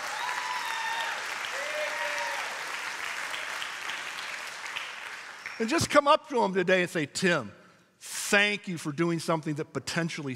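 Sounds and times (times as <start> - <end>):
voices cheering: 0.0 - 2.8
church audience clapping: 0.0 - 5.9
speech: 5.6 - 10.3.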